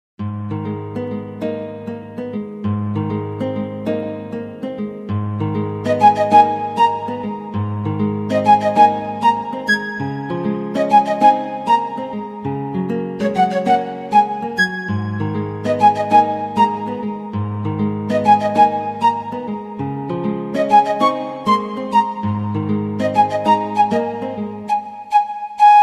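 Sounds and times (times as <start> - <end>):
piano: 0.4 - 25.8
flute: 5.8 - 25.8.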